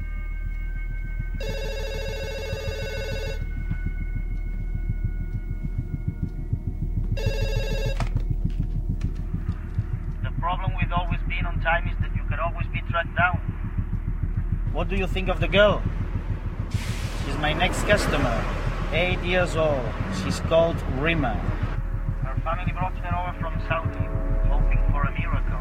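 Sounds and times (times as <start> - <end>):
steady low throbbing hum: 0.0 - 25.5
telephone ringing: 1.4 - 3.5, 7.2 - 8.3
speech: 14.8 - 16.0, 16.7 - 21.6.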